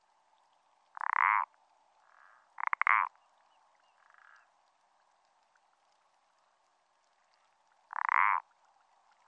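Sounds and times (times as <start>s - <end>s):
parsley frog croaking in France: 1.0s - 3.2s, 4.0s - 4.5s, 7.9s - 8.4s.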